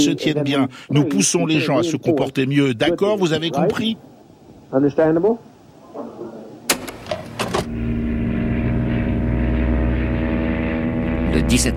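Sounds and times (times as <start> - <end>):
speech: 0.0 - 4.1, 4.7 - 6.1, 11.4 - 11.7
clicks and clunks: 6.7 - 7.7
small propeller plane engine droning: 6.8 - 11.7.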